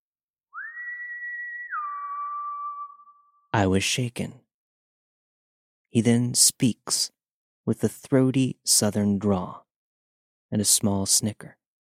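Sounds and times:
man whistling: 0.5 - 3.4
speech: 3.6 - 4.4, 5.9 - 9.6, 10.5 - 11.6.

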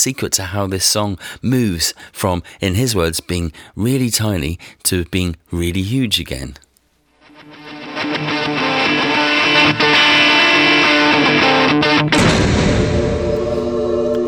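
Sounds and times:
speech: 0.0 - 6.6
loud distorted electric guitar: 7.2 - 14.2
heavy door slamming: 12.2 - 14.1
full choir singing: 13.2 - 14.2.

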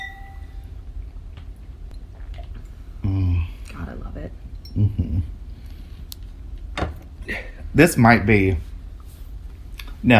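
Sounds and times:
wine glasses clinking in a toast: 0.0 - 0.6
speech: 3.1 - 5.4, 7.3 - 8.7.

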